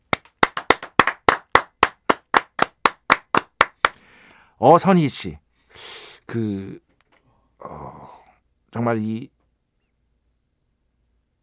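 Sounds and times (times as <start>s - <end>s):
crisp hand claps from a single person: 0.0s - 4.0s
speech: 4.6s - 6.8s, 8.7s - 9.4s.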